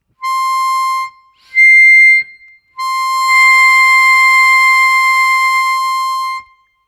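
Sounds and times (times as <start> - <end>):
harmonica octaves played with tongue blocking: 0.2 - 6.6.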